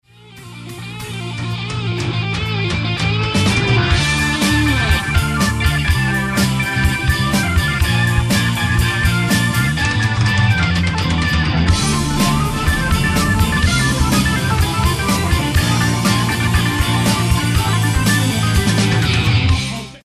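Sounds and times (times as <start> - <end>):
Hammond M102 organ lead sample: 0.4 - 19.7.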